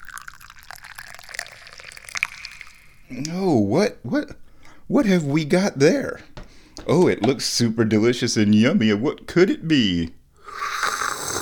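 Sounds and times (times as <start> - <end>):
tea being poured into a cup: 0.0 - 3.2
speech: 3.1 - 6.3, 6.9 - 10.2.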